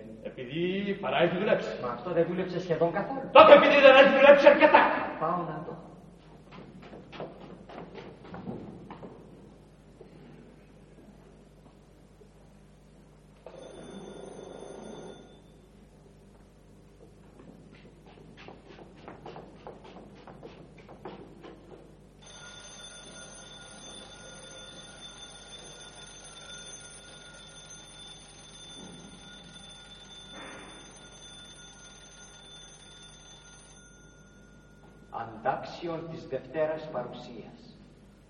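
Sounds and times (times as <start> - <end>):
quieter steady hum: 0.0 - 38.2
speech: 0.5 - 5.9, 35.7 - 37.7
mechanical alarm clock bell ringing: 13.5 - 15.5, 22.2 - 35.4.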